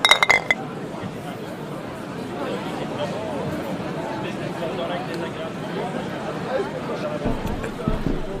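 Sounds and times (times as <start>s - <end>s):
beer glasses clinking in a toast: 0.0s - 0.6s
murmur of voices and chatter: 0.0s - 8.3s.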